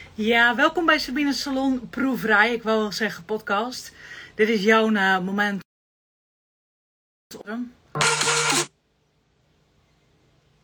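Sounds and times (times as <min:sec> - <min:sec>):
speech: 0:00.2 - 0:05.6, 0:07.3 - 0:08.3
alarm clock going off with a harsh steady buzzing tone: 0:08.0 - 0:08.7.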